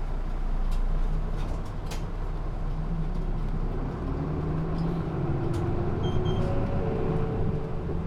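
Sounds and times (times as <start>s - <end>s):
Rinko Bus rapid city bus engine rumbling as it departs: 0.0s - 8.0s
road noise: 0.0s - 8.0s.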